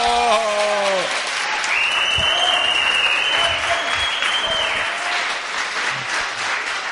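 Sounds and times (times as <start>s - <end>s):
audience cheers: 0.0s - 6.9s
live audience applause: 0.0s - 6.9s
audience whistles: 1.6s - 5.0s.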